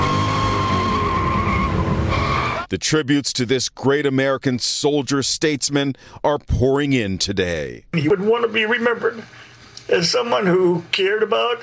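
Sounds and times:
drag race car engines rumbling: 0.0 - 2.7
tires squealing as cars skid in a drag race: 0.0 - 2.7
speech: 2.7 - 11.6.

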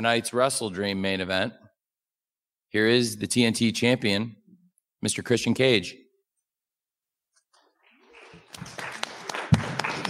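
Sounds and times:
speech: 0.0 - 1.6, 2.7 - 4.4, 5.0 - 6.0
audience applause: 7.9 - 10.0.

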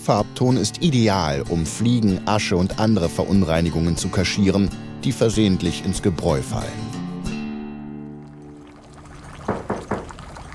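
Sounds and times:
speech: 0.0 - 7.0
faint liquid clatter: 8.0 - 10.5
firm knocks on a door: 9.5 - 10.2.

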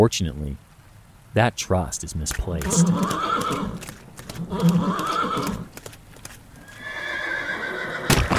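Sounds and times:
speech: 0.0 - 0.7, 1.3 - 5.9
horse hooves clopping: 2.2 - 8.3
horse whinnying: 2.6 - 5.8, 6.6 - 8.3.

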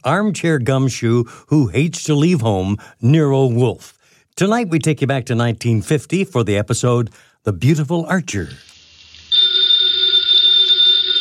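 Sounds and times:
speech: 0.0 - 8.7
telephone bell ringing: 9.3 - 11.2.

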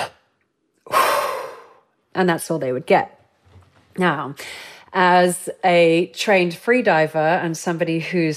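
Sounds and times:
person exhaling a deep breath into a spirometer for a lung capacity test: 0.9 - 1.8
speech: 2.2 - 3.2, 4.0 - 8.3.

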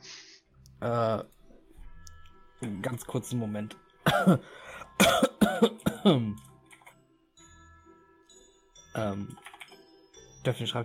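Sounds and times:
speech: 0.8 - 1.4, 2.6 - 6.5, 9.0 - 9.5, 10.4 - 10.8
harsh raspy coughing: 4.0 - 6.3.

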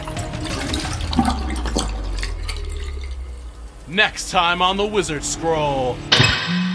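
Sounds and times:
toilet flushing: 0.0 - 4.0
speech: 3.9 - 6.6.

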